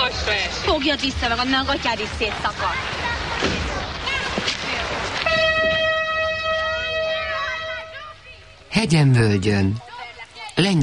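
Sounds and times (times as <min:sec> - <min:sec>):
nostalgia train passing with rumbling clattering noise: 0:00.0 - 0:06.5
speech: 0:00.8 - 0:04.6, 0:08.8 - 0:09.9, 0:10.6 - 0:10.8
nostalgia train whistle blast: 0:05.2 - 0:08.0.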